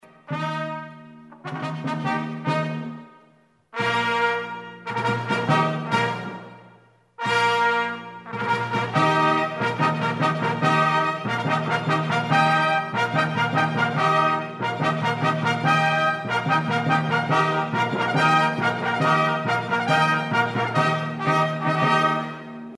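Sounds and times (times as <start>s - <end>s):
fanfare: 0.0s - 22.7s.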